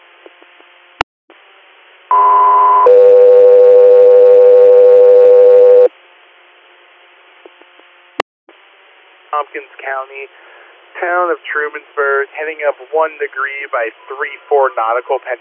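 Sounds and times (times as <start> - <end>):
electronic radio dispatch alert tones: 2.1 - 5.9
radio static hiss: 9.3 - 15.3
speech: 9.5 - 15.3.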